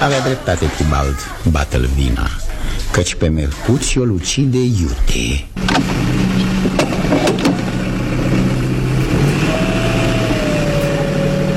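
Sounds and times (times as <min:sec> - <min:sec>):
speech: 0:00.0 - 0:06.3
car engine roaring and revving as the car accelerates away: 0:05.6 - 0:11.5.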